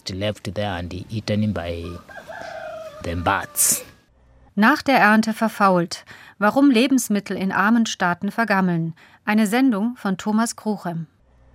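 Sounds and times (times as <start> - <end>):
speech: 0.0 - 2.3, 3.0 - 3.9, 4.6 - 11.1
chickens clucking: 1.7 - 4.0
rooster crowing: 1.8 - 4.1.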